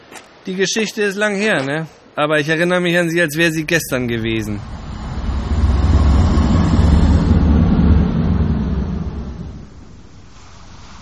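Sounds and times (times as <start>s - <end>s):
speech: 0.5s - 4.7s
sea waves crashing at List: 2.8s - 11.0s
storm wind roaring: 3.0s - 11.0s.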